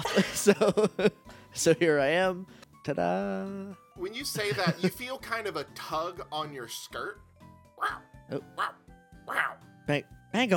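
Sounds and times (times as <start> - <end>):
laughter: 0.0 - 1.2, 4.4 - 5.0
speech: 0.0 - 10.5
police dog barking: 7.8 - 8.0, 8.6 - 9.6.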